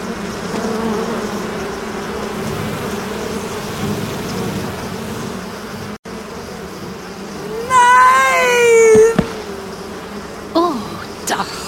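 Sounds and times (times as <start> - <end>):
large bee swarm buzzing: 0.0 - 11.6.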